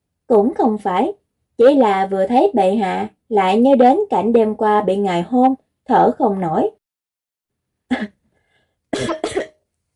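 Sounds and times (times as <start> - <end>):
speech: 0.3 - 6.8, 7.9 - 8.2, 8.9 - 9.4
choking coughs from someone drinking soup: 7.9 - 8.2, 8.9 - 9.6.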